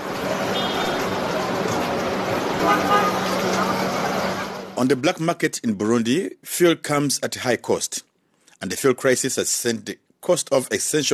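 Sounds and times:
crowd of motorists and people at a petrol station: 0.0s - 4.8s
car horns tooting at a petrol station: 0.4s - 1.3s, 2.6s - 4.6s
speech: 2.6s - 3.2s, 4.8s - 11.1s.

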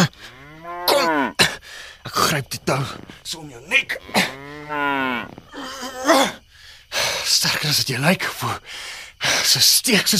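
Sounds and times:
cow mooing: 0.0s - 1.4s, 3.8s - 5.6s
speech: 2.3s - 6.1s, 7.3s - 10.1s.

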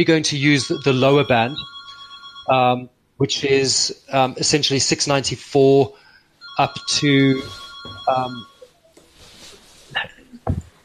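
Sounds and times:
speech: 0.0s - 1.7s, 2.5s - 6.0s, 6.6s - 8.5s
telephone ringing: 0.6s - 2.6s, 6.4s - 8.8s.

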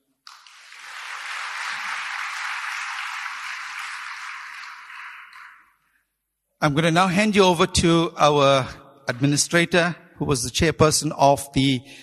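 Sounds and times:
crowd applauding: 0.2s - 5.8s
speech: 6.6s - 12.0s.

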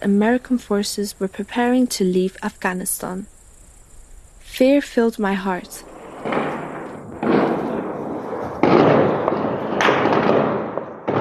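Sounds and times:
speech: 0.0s - 3.4s, 4.5s - 6.6s
heavy gunfire heard from indoors: 6.0s - 11.1s.

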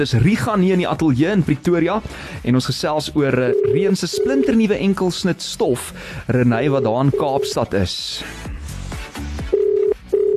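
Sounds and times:
speech: 0.0s - 8.5s
low telephone line tones as a call is placed: 3.5s - 4.6s, 6.7s - 7.8s, 9.5s - 10.3s.

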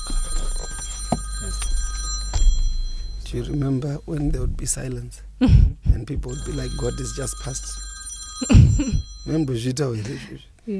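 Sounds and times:
phone ringing with a shrill electronic tone: 0.0s - 4.1s, 6.3s - 10.1s
low rumble: 0.0s - 9.7s
speech: 3.3s - 7.8s, 8.4s - 10.7s.

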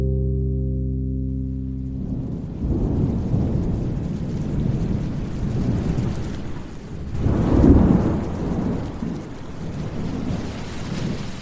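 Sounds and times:
steady rain in a forest: 0.2s - 11.3s
thunder rumbling in a forest: 1.3s - 11.3s.

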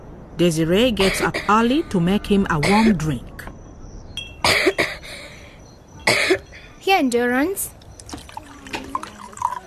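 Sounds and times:
speech: 0.4s - 3.3s, 7.0s - 7.8s
harsh coughing: 4.4s - 5.0s, 6.0s - 6.5s.

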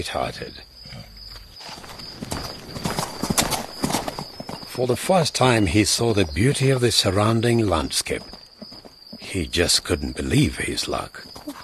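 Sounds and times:
speech: 0.0s - 0.7s, 4.8s - 8.4s, 9.3s - 11.4s
hooves of a ridden mare clip-clopping at a walk: 1.4s - 4.8s, 7.4s - 9.3s.

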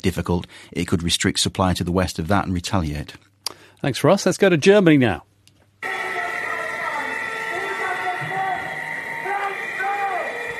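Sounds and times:
speech: 0.0s - 5.3s
thousands of VW workers shouting in a hall: 5.8s - 10.5s.

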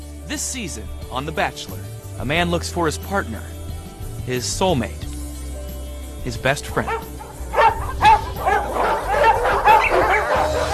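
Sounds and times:
speech: 0.3s - 3.6s, 4.2s - 5.1s, 6.2s - 7.1s
dogs barking with yips and a whimper: 6.7s - 10.7s.

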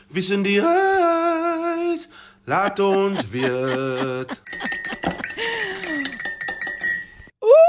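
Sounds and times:
speech: 0.1s - 1.2s, 1.9s - 4.8s
laughter: 2.5s - 5.3s
spoon clinking against a coffee cup while stirring: 4.1s - 7.4s.

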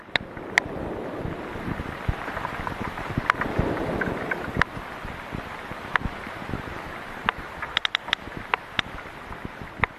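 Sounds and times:
ocean noise: 0.0s - 9.9s
sperm whales clicking codas: 2.3s - 4.7s, 7.2s - 9.0s.

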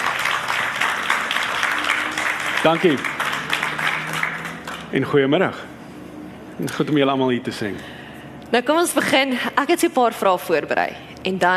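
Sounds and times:
crowd applauding: 0.0s - 5.6s
speech: 2.6s - 3.2s, 4.9s - 5.6s, 6.6s - 7.9s, 8.5s - 11.5s.

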